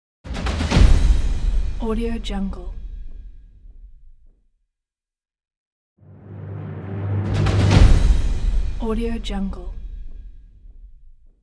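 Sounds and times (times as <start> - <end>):
trailer drum hit: 0.3 - 4.0, 6.1 - 11.1.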